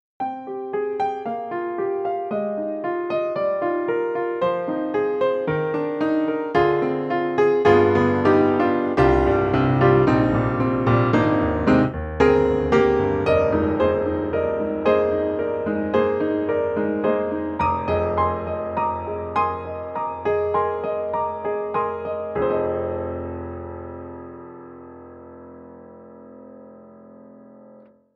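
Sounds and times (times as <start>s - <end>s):
synthesizer una corda piano: 0.2s - 28.1s.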